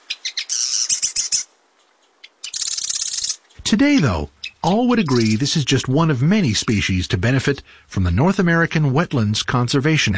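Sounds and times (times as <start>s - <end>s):
Marsh Wren song with ticking notes and harsh buzzy rattle: 0.1s - 3.6s, 4.4s - 5.4s
speech: 3.7s - 10.1s.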